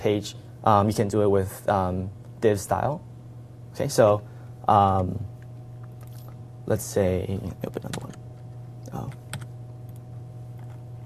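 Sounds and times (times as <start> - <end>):
speech: 0.0 - 3.1, 3.8 - 5.3, 6.7 - 8.1
steady low hum: 0.0 - 11.0
computer keyboard typing during web page coding: 7.8 - 8.2, 8.9 - 9.5.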